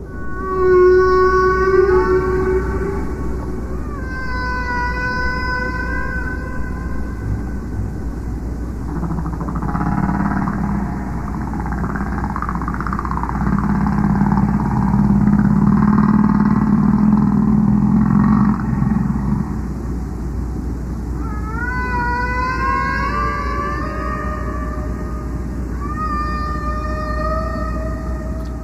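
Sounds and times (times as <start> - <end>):
steady low underwater rumble: 0.0 - 20.1
long sweeping whale calls with harmonic overtones: 0.0 - 28.6.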